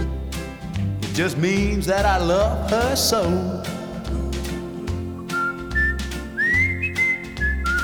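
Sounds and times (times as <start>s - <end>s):
musical backing with a thumping bass beat: 0.0s - 7.8s
speech: 1.2s - 3.8s
person whistling a bright sliding melody: 4.0s - 7.8s.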